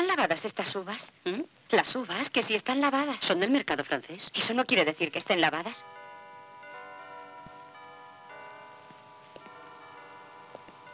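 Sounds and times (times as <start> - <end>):
speech: 0.2 - 6.0
cathedral bells ringing in a city neighbourhood: 5.5 - 10.9.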